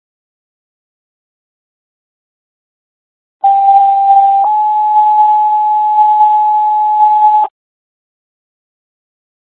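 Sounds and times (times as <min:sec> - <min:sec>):
county EMS dispatch two-tone paging tones: 0:03.4 - 0:07.5.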